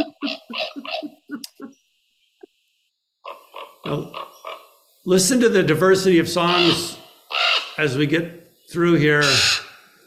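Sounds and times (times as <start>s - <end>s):
common raven croaking: 0.0s - 1.8s, 3.2s - 5.0s, 6.3s - 8.0s, 9.2s - 10.0s
speech: 3.9s - 4.3s, 5.0s - 7.0s, 7.8s - 9.6s.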